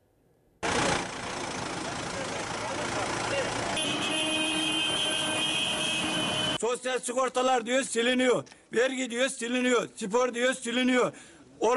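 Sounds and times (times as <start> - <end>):
tractor engines idling at a farmers' protest in Amasya Turkey: 0.6 - 6.6
sustained tractor horn blasts at a farmers' protest: 3.8 - 6.6
speech: 6.7 - 11.7.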